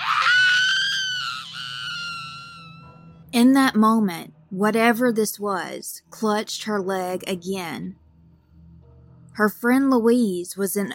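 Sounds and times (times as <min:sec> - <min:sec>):
woman screaming in terror: 0:00.0 - 0:02.8
speech: 0:03.4 - 0:08.0, 0:09.4 - 0:10.9.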